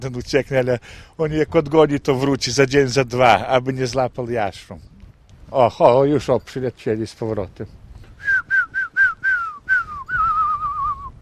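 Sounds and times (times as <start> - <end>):
speech: 0.0 - 4.9, 5.5 - 7.8
man whistling to call pigeons: 8.2 - 11.2.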